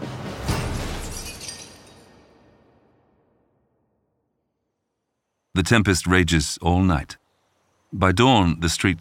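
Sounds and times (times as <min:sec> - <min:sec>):
brick smashing through window glass: 0:00.5 - 0:02.4
glass shards tinkling and scattering: 0:00.7 - 0:02.1
speech: 0:05.6 - 0:07.2, 0:07.9 - 0:08.9.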